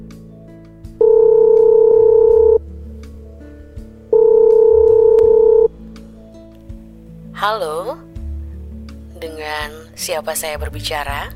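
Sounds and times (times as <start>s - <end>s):
telephone dialing: 1.0s - 2.6s, 4.2s - 5.7s
speech: 7.4s - 8.1s, 9.6s - 11.3s.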